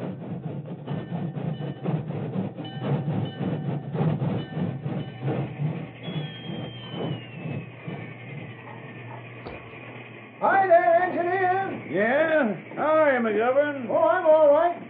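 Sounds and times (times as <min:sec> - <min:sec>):
work train wheels clattering over rail joints: 0:00.0 - 0:14.8
faint train engine whistle: 0:04.6 - 0:09.7.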